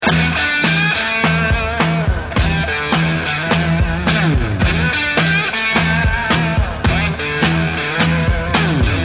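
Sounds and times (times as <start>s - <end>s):
guitar riff through an octave effect pedal: 0.0s - 9.0s.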